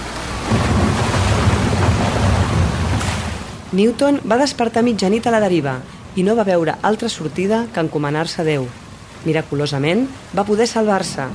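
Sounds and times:
crashing waves of a storm at sea: 0.0 - 11.3
heavy rain over crashing waves at sea: 0.0 - 11.3
deep rumbling thunder of a storm at sea: 0.4 - 3.7, 11.0 - 11.3
speech: 3.7 - 11.3.

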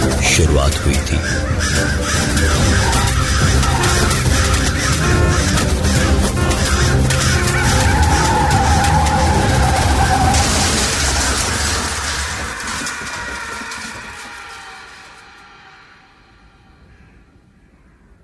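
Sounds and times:
speech: 0.4 - 2.7
car tires skidding across pavement in an accident: 1.5 - 16.0.

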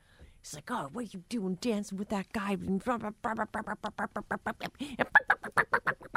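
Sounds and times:
speech: 0.4 - 5.9
person imitating a chicken clucking: 3.2 - 6.1
higher imitated chicken squawk: 5.1 - 6.1.

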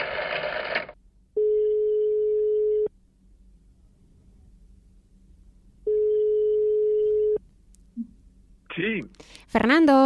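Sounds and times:
telephone ringing tone of long electronic beeps: 0.1 - 2.9, 5.9 - 7.4
speech: 9.5 - 10.0.

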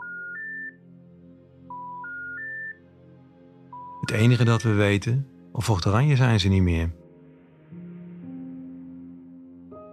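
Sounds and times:
electronic telephone dialing tones: 0.0 - 0.8, 1.7 - 2.8
speech: 4.0 - 7.0.

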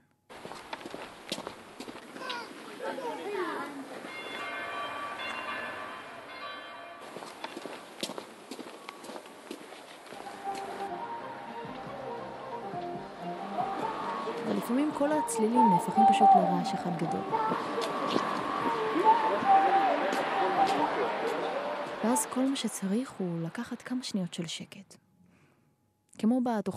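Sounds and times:
footsteps on a busy street in Jaffa: 0.3 - 11.1, 16.7 - 22.6
passing tonal whines: 10.1 - 24.6
speech: 15.0 - 18.3, 22.0 - 25.0, 26.2 - 26.7.

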